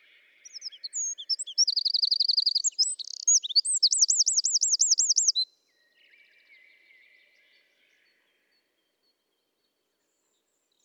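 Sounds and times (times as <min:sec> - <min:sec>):
Eurasian wren Troglodytes troglodytes singing twitters and trills: 0:00.4 - 0:05.4.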